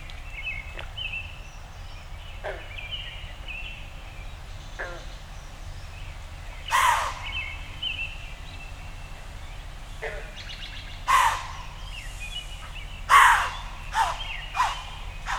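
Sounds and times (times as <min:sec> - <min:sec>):
birds calling at dawn in a backyard on an inland lake in northern Michigan: 0:00.0 - 0:15.3.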